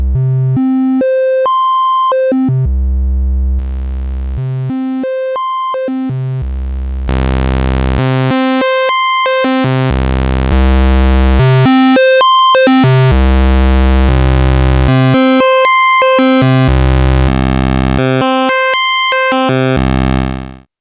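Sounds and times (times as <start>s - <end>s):
Creamware Minimax synthesizer basic waveforms: 0.2s - 2.7s, 3.6s - 20.5s.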